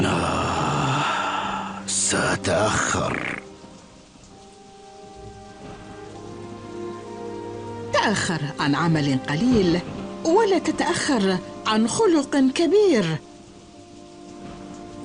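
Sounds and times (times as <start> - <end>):
heavy rain: 0.0 - 15.0
speech: 2.1 - 3.4, 8.1 - 13.3.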